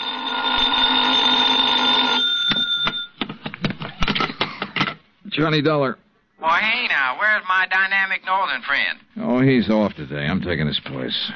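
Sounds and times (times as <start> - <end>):
telephone bell ringing: 0.0 - 3.2
speech: 5.4 - 11.3.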